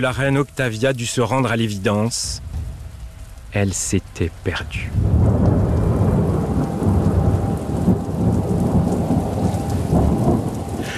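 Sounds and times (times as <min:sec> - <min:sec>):
speech: 0:00.0 - 0:02.5, 0:03.5 - 0:05.1
steady heavy rain pouring in a thunderstorm: 0:00.0 - 0:10.9
deep rolling thunder rumbling: 0:02.2 - 0:03.9, 0:04.7 - 0:10.9.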